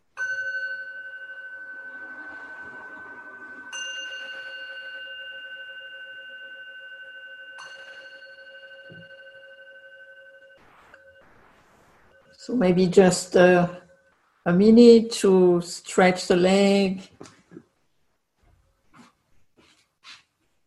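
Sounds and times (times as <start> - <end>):
meditation bell struck: 0.0 - 14.8
speech: 12.4 - 13.8, 14.4 - 17.3.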